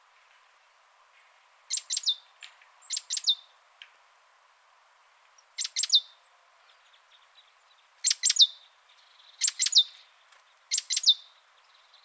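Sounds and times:
great tit Parus major calls: 1.7 - 3.4, 5.6 - 6.1, 8.0 - 10.0, 10.7 - 12.0.

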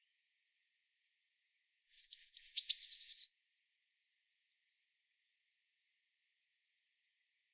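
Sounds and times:
Eurasian blue tit Cyanistes caeruleus high notes and descending trill: 1.9 - 3.3.

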